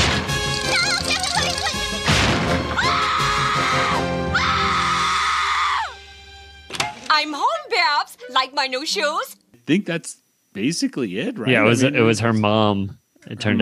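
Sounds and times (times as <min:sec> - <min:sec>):
busy cartoon music: 0:00.0 - 0:08.7
cartoon girl screaming shrilly while running away: 0:00.7 - 0:01.8, 0:02.8 - 0:06.0
sudden crash: 0:02.0 - 0:02.8
speech: 0:08.4 - 0:13.6.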